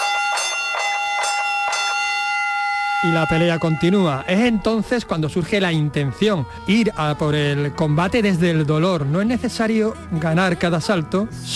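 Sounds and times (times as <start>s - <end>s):
boxing bell ringing: 0.0s - 5.0s
speech: 3.0s - 11.5s.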